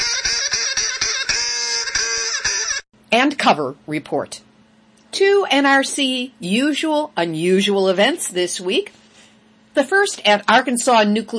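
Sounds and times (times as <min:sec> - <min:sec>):
nasal duck quacking sound effect: 0:00.0 - 0:02.8
speech: 0:03.1 - 0:04.4, 0:05.1 - 0:09.0, 0:09.8 - 0:11.3.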